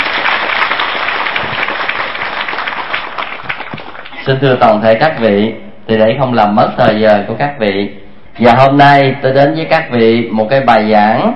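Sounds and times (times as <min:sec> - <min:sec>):
large audience applauding at a dharma talk welcoming a Buddhist nun: 0:00.0 - 0:04.2
speech: 0:04.2 - 0:11.3.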